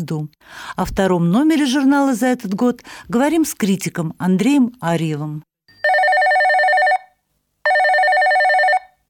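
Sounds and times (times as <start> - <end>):
speech: 0.0 - 5.5
telephone electronic ring: 5.7 - 9.0.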